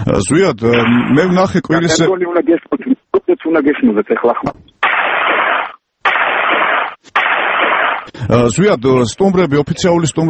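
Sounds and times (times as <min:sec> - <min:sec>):
speech: 0:00.1 - 0:04.6, 0:08.3 - 0:10.2
rifle volleys fired as an honorary salute at a military funeral: 0:04.8 - 0:08.1.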